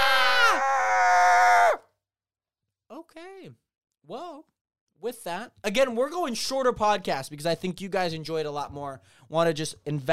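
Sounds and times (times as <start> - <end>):
woman screaming high-pitched: 0.0 - 1.8
speech: 3.2 - 10.1.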